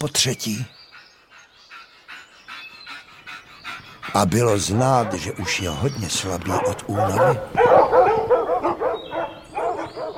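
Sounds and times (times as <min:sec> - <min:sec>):
speech: 0:00.0 - 0:00.8, 0:04.1 - 0:08.0
pack of hunting dogs barking and baying on a hare's trail: 0:00.8 - 0:10.1.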